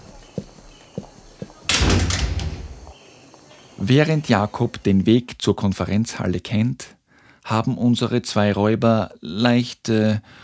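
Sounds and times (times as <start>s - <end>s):
soft footsteps: 0.0s - 3.0s
door pulled open with loud broad rushing scrape and rumble: 1.7s - 2.9s
speech: 3.8s - 10.4s.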